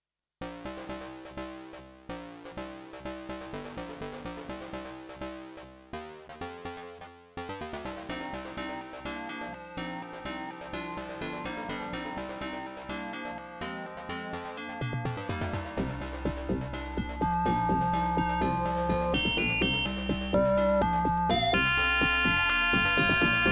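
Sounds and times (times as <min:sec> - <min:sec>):
soundcard test page intro music: 0:07.6 - 0:23.5.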